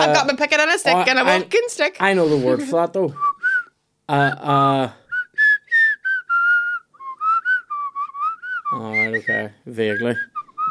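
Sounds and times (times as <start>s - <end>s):
speech: 0.0s - 3.3s, 4.1s - 5.0s, 8.7s - 10.7s
person whistling a simple tune: 3.2s - 3.7s, 5.1s - 10.7s.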